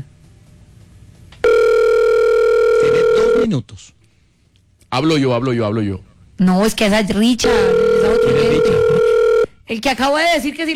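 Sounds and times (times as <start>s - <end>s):
telephone dial tone as a call is placed: 1.4s - 3.5s, 7.5s - 9.5s
speech: 3.5s - 4.0s, 4.9s - 9.0s, 9.7s - 10.7s.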